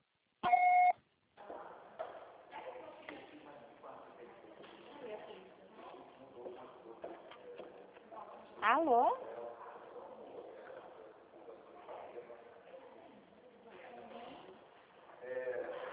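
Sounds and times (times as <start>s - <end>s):
answering machine beep tone: 0.5s - 0.9s
speech: 8.6s - 9.2s.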